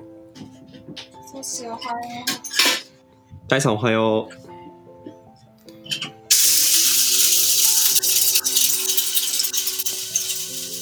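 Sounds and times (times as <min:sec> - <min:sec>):
speech: 0:00.4 - 0:02.7, 0:03.5 - 0:04.4
coffee grinder grinding whole coffee beans at home: 0:06.3 - 0:10.8.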